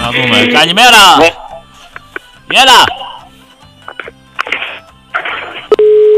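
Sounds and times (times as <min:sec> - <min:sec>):
speech: 0:00.2 - 0:01.4, 0:02.5 - 0:03.0
crackly bursts and clicks of phone-line noise from a dropped call: 0:03.8 - 0:05.9
steady telephone busy tone after a dropped call: 0:05.7 - 0:06.1.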